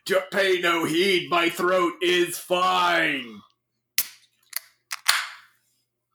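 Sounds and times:
speech: 0.0 - 3.5
can being opened with effort: 4.0 - 5.4.

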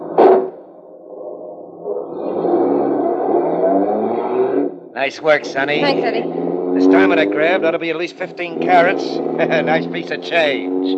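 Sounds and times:
sharp thump: 0.2 - 0.6
car engine revving as the vehicle pulls away: 2.2 - 10.9
speech: 5.0 - 10.9
laughter: 6.8 - 7.9, 8.6 - 10.4.

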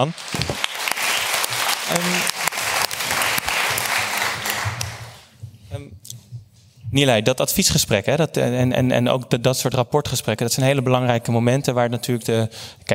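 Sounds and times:
speech: 0.0 - 0.6, 1.9 - 2.4, 6.9 - 12.9
audience applause in a room full of people: 0.0 - 5.3.

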